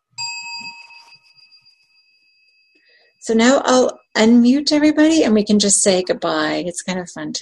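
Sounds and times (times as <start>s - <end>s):
meditation bell struck at the end of a practice session: 0.0s - 3.8s
speech: 3.2s - 7.4s.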